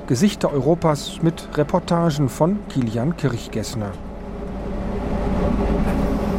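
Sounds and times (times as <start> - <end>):
train rumbling in motion heard from the locomotive cab in the Czech Republic: 0.0 - 6.3
speech: 0.1 - 4.1.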